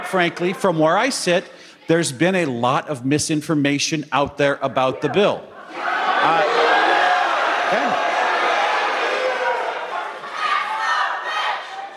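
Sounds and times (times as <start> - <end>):
speech: 0.1 - 6.6
large crowd booing and shouting at a town hall in Lincoln Nebraska: 5.1 - 11.9.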